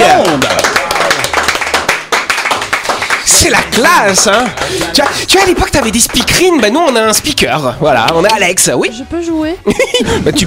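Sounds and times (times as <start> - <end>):
hand clapping from a small group: 0.0 - 6.7, 8.0 - 8.5
speech: 3.8 - 10.4
laughter: 9.6 - 10.4.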